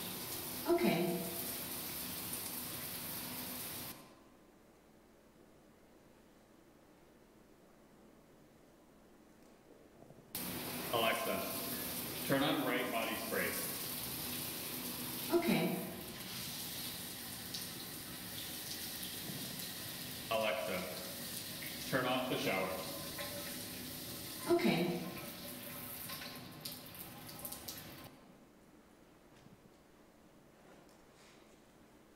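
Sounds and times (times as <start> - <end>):
shower water running: 0.0 - 4.0, 10.4 - 28.1
person speaking: 0.7 - 1.3, 10.9 - 13.8, 15.3 - 16.0.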